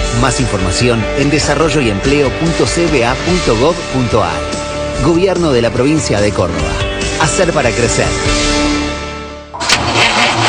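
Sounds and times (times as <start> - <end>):
speech: 0.2 - 8.8
car engine cranking but failing to start: 9.6 - 10.4.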